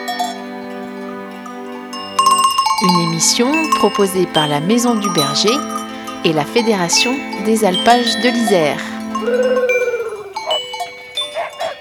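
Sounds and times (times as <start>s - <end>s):
speech: 2.8s - 9.7s
flock of ewes bleating: 2.8s - 11.7s.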